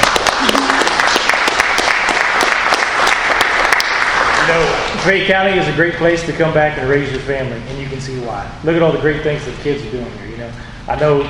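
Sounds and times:
crowd applauding a presentation: 0.0 - 4.9
speech: 4.6 - 11.2.

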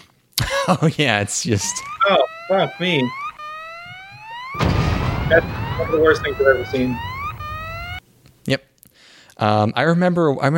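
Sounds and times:
speech: 0.7 - 3.2, 5.3 - 7.1, 8.5 - 8.7, 9.4 - 10.5
sirens wailing: 1.3 - 8.0
heavy noisy rumble: 4.6 - 8.0
voice-like sounds: 5.3 - 7.0.

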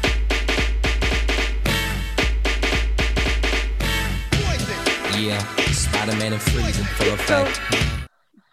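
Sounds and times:
New Jack Swing track with drums, heavy bass and synth stabs: 0.0 - 8.1
speech: 5.2 - 8.0.

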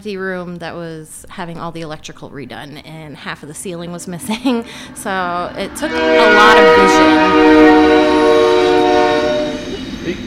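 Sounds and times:
speech: 0.0 - 7.5
train cars rumbling through a train station: 0.6 - 10.2
train horn blaring in a train station: 4.8 - 10.2.

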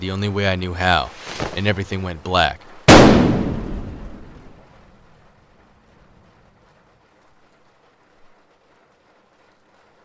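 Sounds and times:
speech: 0.0 - 3.3
gunshot from a drawn gun: 2.9 - 4.3.

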